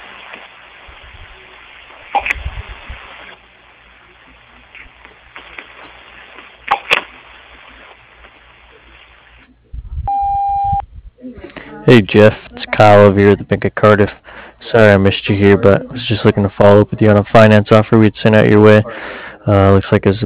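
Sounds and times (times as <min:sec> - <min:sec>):
faint telephone-line hiss: 0:00.0 - 0:09.5, 0:10.1 - 0:10.8
answering machine beep: 0:10.1 - 0:10.8
speech: 0:11.9 - 0:20.2.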